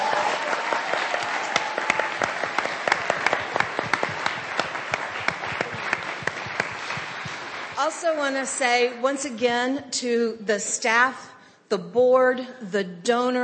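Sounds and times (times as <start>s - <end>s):
crowd applauding for student finalists: 0.0s - 7.8s
speech: 7.8s - 13.4s.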